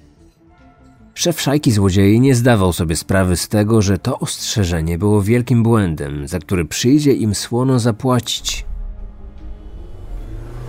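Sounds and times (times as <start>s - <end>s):
speech: 1.2s - 8.7s
car engines rumbling as vehicles pull away: 8.4s - 10.6s.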